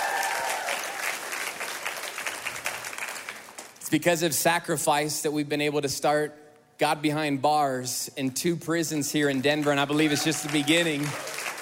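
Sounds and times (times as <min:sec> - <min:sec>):
audience clapping in dense steady applause: 0:00.0 - 0:03.7, 0:09.6 - 0:11.6
speech: 0:03.9 - 0:11.3.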